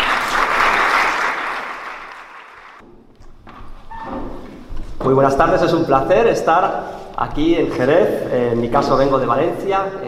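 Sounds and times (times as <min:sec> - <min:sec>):
room full of people applauding: 0:00.0 - 0:02.8
speech: 0:05.1 - 0:10.0.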